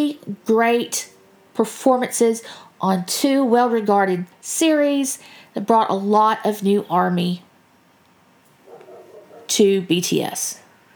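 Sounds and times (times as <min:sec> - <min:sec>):
speech: 0:00.0 - 0:07.5, 0:09.5 - 0:10.6
dog barking: 0:08.6 - 0:09.5.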